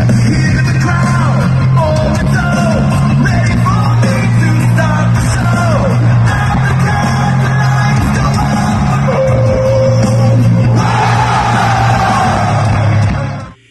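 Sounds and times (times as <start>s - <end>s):
arena crowd in Monterrey Mexico screaming and singing along to a theme song: 0.0s - 13.6s
booming theme song music at an arena show: 0.0s - 13.6s.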